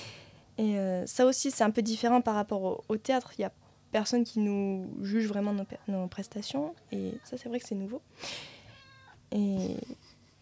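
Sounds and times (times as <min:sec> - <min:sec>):
speech: 0:00.6 - 0:08.6, 0:09.3 - 0:10.1
cat meowing: 0:08.6 - 0:09.2.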